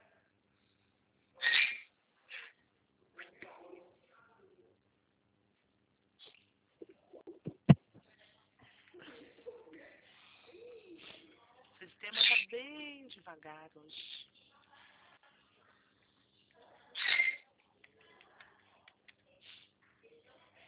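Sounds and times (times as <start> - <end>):
parrot squawking and calling: 1.4 - 2.5, 12.1 - 12.5, 17.0 - 17.4
speech: 13.2 - 14.3.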